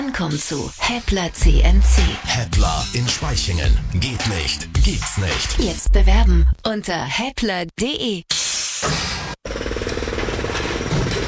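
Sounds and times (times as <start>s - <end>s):
speech: 0.2s - 9.0s
jackhammer pounding at a construction site expanding the electricity grid: 9.4s - 11.2s.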